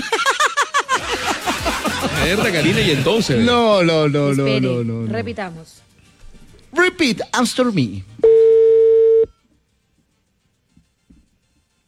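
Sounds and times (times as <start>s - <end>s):
laughter: 0.0s - 3.5s
speech: 2.2s - 5.9s, 6.7s - 8.4s
telephone tone after the other party hangs up: 8.2s - 9.4s.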